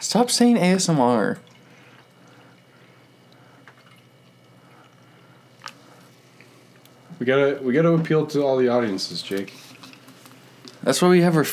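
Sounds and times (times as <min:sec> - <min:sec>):
speech: 0:00.0 - 0:01.5, 0:07.2 - 0:09.7, 0:10.8 - 0:11.5
soda being poured: 0:00.0 - 0:11.5
soda bubbles hissing: 0:00.0 - 0:11.5.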